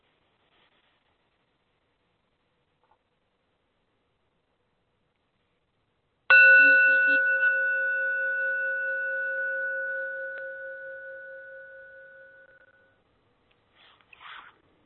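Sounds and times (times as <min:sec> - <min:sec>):
soft rustle: 0:00.0 - 0:01.8, 0:13.5 - 0:14.8
Tibetan bell struck once, bright metallic ring: 0:06.3 - 0:12.9.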